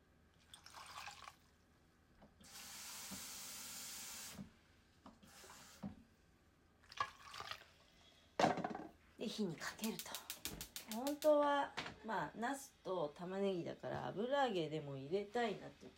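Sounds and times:
water running into a kitchen pot holding eggplant: 0:00.4 - 0:01.5, 0:06.8 - 0:07.8
speech: 0:09.2 - 0:10.2, 0:10.9 - 0:15.9.

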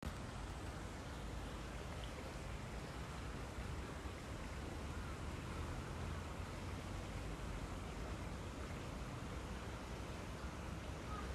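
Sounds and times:
stream rushing: 0:00.0 - 0:11.3.

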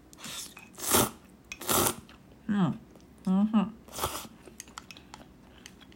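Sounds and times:
person eating somen noodles with dipping sauce: 0:00.2 - 0:02.1, 0:03.9 - 0:05.9
speech: 0:02.5 - 0:04.1.

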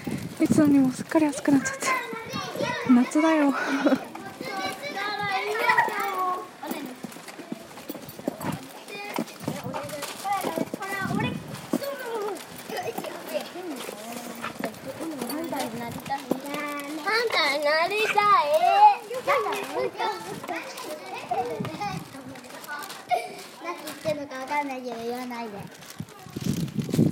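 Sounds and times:
elementary schoolchildren chattering on walk home: 0:00.0 - 0:27.1
speech: 0:00.4 - 0:02.0, 0:02.9 - 0:04.1
elementary schoolchildren shouting: 0:01.7 - 0:06.9, 0:17.1 - 0:22.0.

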